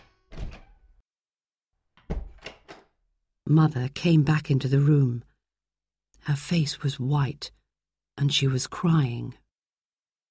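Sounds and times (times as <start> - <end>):
front door opening with a rattling thud: 0.0 - 1.0, 2.0 - 3.0
speech: 3.5 - 5.3, 6.2 - 7.6, 8.2 - 9.4.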